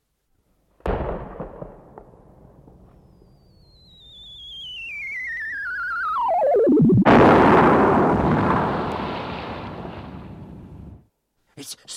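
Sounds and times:
cannon booming: 0.8s - 3.5s, 7.0s - 11.0s
loud rumbling shell explosion: 0.9s - 3.4s, 6.9s - 11.0s
shell whistling in a falling pitch: 3.0s - 6.7s.

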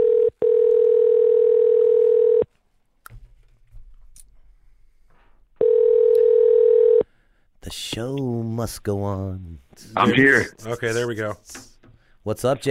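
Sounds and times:
telephone dial tone: 0.0s - 2.5s, 5.6s - 7.0s
speech: 8.0s - 12.6s.

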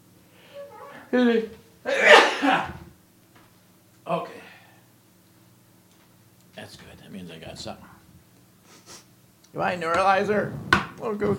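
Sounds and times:
speech: 1.1s - 2.8s, 7.6s - 7.9s, 9.5s - 11.3s
single loud sneeze: 1.9s - 2.8s.

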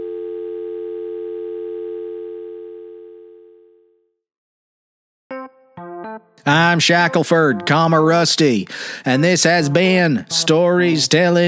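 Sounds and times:
telephone dial tone: 0.0s - 3.9s
speech: 6.4s - 11.4s.

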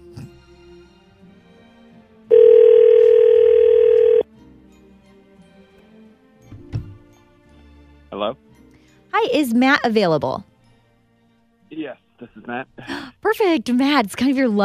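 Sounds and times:
ringback tone on an outgoing phone call: 2.3s - 4.3s
speech: 9.3s - 10.5s, 12.5s - 14.6s.

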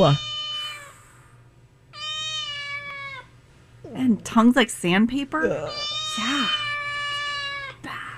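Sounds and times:
speech: 0.0s - 0.2s, 4.0s - 6.6s
cat meowing on a plane: 0.0s - 1.0s, 2.0s - 3.3s, 5.6s - 7.8s
steady low hum: 0.0s - 8.1s.

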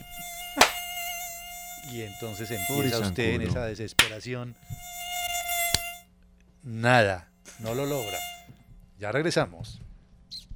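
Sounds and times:
mosquito whining with a thin high-pitched drone: 0.0s - 3.3s, 4.0s - 6.0s, 7.5s - 8.5s
single sharp smack: 0.6s - 0.9s, 4.0s - 4.2s
speech: 1.9s - 5.0s, 6.6s - 8.3s, 9.0s - 9.9s.

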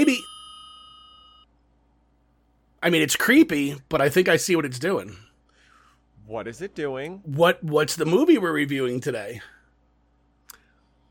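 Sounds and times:
bright electronic ring like a house phone: 0.0s - 1.5s
speech: 2.8s - 5.2s, 6.3s - 9.6s.

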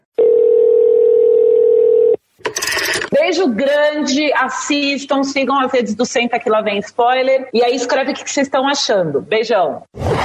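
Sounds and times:
telephone ringing with a steady electronic tone: 0.0s - 3.2s
speech: 3.3s - 10.2s.

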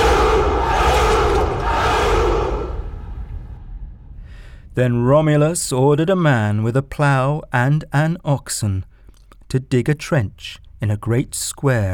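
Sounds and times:
large crowd roaring and shouting in a cheer: 0.0s - 3.4s
speech: 4.8s - 8.9s, 9.5s - 11.9s.

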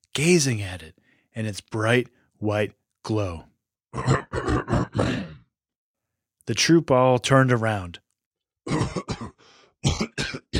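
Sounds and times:
speech: 0.2s - 5.2s, 6.5s - 8.0s, 8.7s - 9.2s
king coughing uncontrollably: 4.0s - 5.4s, 8.7s - 10.5s.

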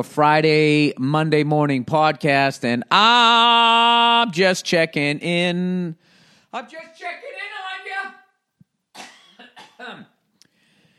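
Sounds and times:
speech: 0.0s - 7.5s, 9.8s - 10.1s
person coughing: 8.9s - 10.2s.

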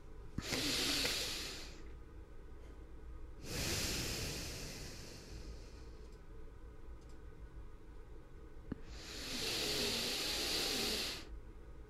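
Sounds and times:
slow deep breath: 0.4s - 1.9s, 3.4s - 6.1s, 8.7s - 11.3s.

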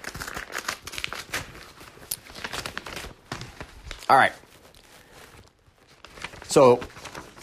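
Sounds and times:
returned paper envelope being torn open and handled: 0.0s - 7.4s
speech: 4.1s - 4.4s, 6.6s - 7.4s.

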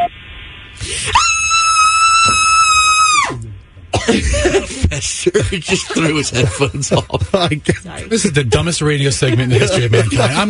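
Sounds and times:
recorded high-pitched scream played over a phone line: 0.9s - 3.5s
laughter: 4.1s - 8.3s, 9.0s - 10.4s
speech: 4.1s - 10.4s.

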